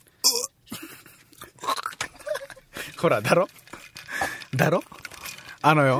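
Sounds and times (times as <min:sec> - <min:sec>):
chewing and crunching of food: 0:00.9 - 0:05.9
speech: 0:03.0 - 0:03.6, 0:04.6 - 0:05.0, 0:05.6 - 0:05.9.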